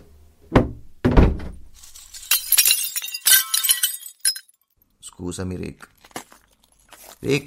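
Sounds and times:
heavy thuds on house window glass: 0:00.5 - 0:01.6
bright scattered tinkling glass shards falling: 0:01.8 - 0:04.6
house window glass breaking and shattering: 0:01.8 - 0:04.6
speech: 0:05.2 - 0:06.0, 0:07.2 - 0:07.4.

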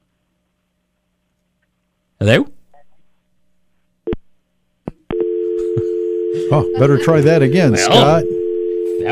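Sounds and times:
speech: 0:02.2 - 0:02.5, 0:06.5 - 0:08.4
telephone busy signal after dialing a number: 0:05.1 - 0:09.0.

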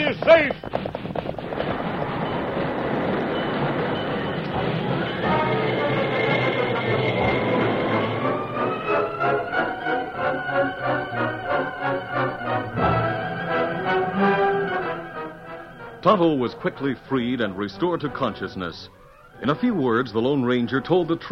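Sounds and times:
train rumbling with rhythmic wheel clatter: 0:00.0 - 0:17.7
speech: 0:00.1 - 0:00.9, 0:16.1 - 0:21.2
high drawn-out squealing tones: 0:01.7 - 0:13.6.

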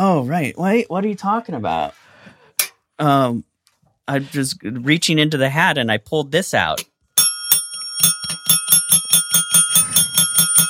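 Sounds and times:
speech: 0:00.0 - 0:02.0, 0:03.0 - 0:03.5, 0:04.1 - 0:06.9
bell ringing rapidly: 0:07.2 - 0:10.6.

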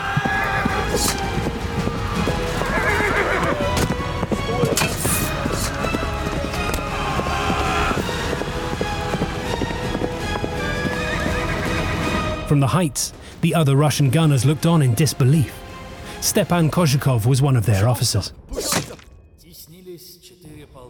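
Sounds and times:
many cavalry horses galloping in a charge: 0:00.0 - 0:12.4
cavalry horses whinnying and neighing: 0:00.0 - 0:12.5
speech: 0:12.5 - 0:15.6, 0:16.2 - 0:18.8.

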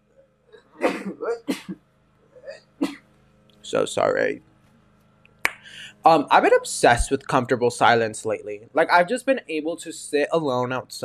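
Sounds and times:
person sneezing: 0:00.8 - 0:01.8
speech: 0:01.0 - 0:01.9, 0:03.7 - 0:04.5, 0:06.0 - 0:11.0
gasping intakes of breath: 0:05.6 - 0:06.0.

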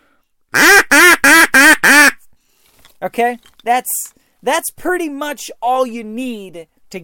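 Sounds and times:
duck call blowing a descending greeting call: 0:00.5 - 0:02.2
speech: 0:03.0 - 0:07.0.

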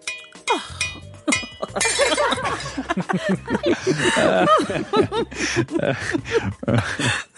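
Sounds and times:
glass clinking: 0:00.0 - 0:03.0
people chuckling and laughing: 0:01.3 - 0:07.3.

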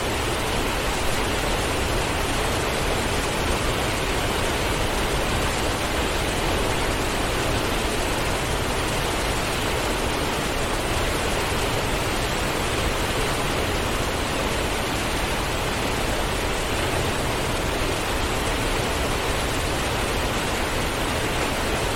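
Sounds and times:
waterfall pouring: 0:00.0 - 0:21.9.

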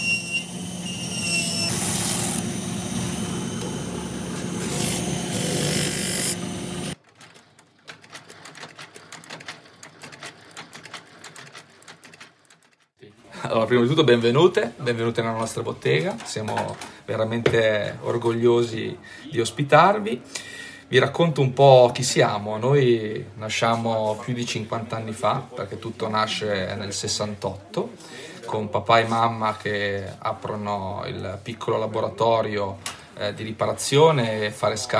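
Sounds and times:
loud steady machine drone in a shoemaking workshop: 0:00.2 - 0:07.0
filing and rasping in a shoemaking workshop: 0:04.3 - 0:07.0
speech: 0:13.5 - 0:34.9.

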